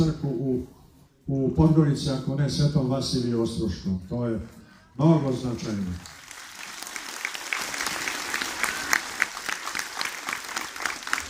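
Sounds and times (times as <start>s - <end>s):
speech: 0.0s - 6.2s
audience applause at a public address in Podgorica: 5.8s - 11.2s.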